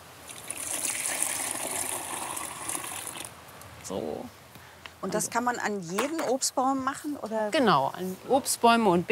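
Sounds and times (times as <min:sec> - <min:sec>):
one litre of liquid plant manure pouring: 0:00.2 - 0:03.3
speech: 0:03.9 - 0:04.4, 0:05.0 - 0:09.1.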